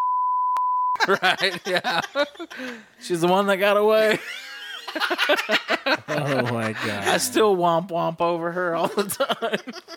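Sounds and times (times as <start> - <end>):
high-pitched censor bleep tone: 0.0 - 1.0
laughter: 1.0 - 2.9, 4.0 - 7.4, 8.8 - 9.9
speech: 1.0 - 9.9.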